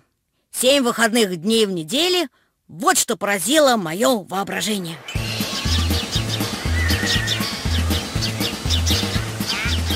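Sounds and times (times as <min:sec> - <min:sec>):
speech: 0:00.6 - 0:05.4
sparrows chirping in bushes: 0:04.6 - 0:09.9.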